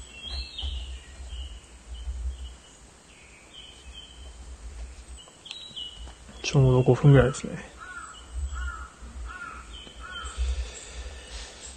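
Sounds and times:
speech: 6.5 - 7.8
crows cawing: 7.2 - 11.2.

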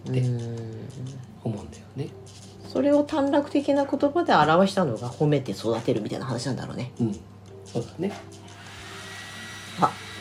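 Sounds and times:
speech: 0.1 - 0.6, 2.8 - 8.4, 9.8 - 10.0
hair dryer running: 8.5 - 10.1.

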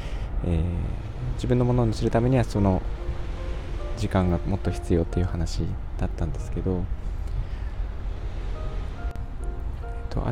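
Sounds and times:
wind at the seaside: 0.0 - 10.2
speech: 1.4 - 3.2, 4.0 - 7.1.

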